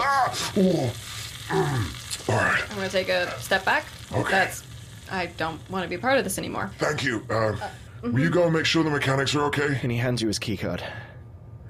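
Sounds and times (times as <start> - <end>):
man whining and groaning in pain: 0.0 - 2.0
hissing sizzle of a first aid patch applied to skin: 0.0 - 9.6
speech: 0.5 - 11.1.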